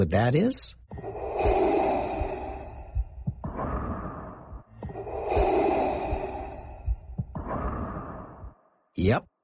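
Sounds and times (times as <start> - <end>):
speech: 0.0 - 0.8, 9.0 - 9.3
slow heavy breathing through a scuba regulator: 1.0 - 8.6.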